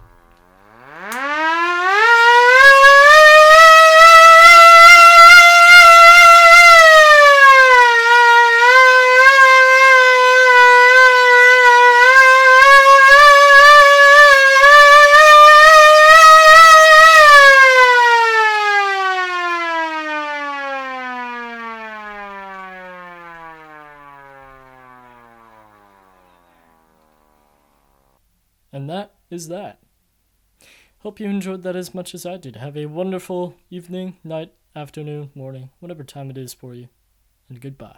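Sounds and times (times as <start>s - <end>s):
civil defense siren with all chambers open: 0.1s - 28.2s
speech: 29.4s - 29.8s, 31.0s - 37.9s.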